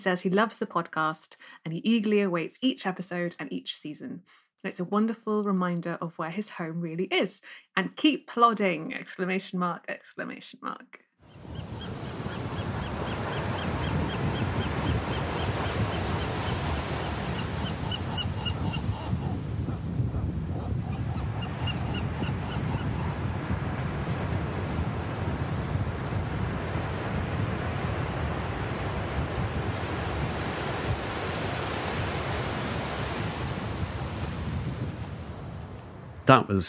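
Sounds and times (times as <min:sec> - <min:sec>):
speech: 0:00.0 - 0:11.8, 0:36.3 - 0:36.6
wind: 0:11.2 - 0:36.4
Pacific ocean waves breaking on a beach: 0:11.4 - 0:36.2
western gull calling: 0:11.6 - 0:23.2.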